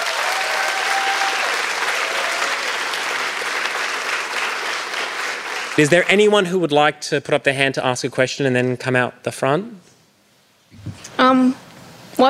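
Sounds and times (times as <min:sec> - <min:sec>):
large audience applauding at an event: 0:00.0 - 0:06.6
speech: 0:05.8 - 0:09.9, 0:10.8 - 0:11.6.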